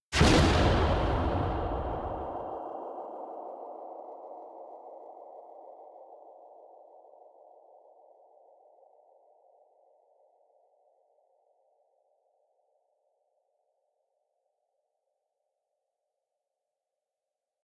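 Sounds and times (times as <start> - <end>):
warped explosion: 0.2 - 2.6.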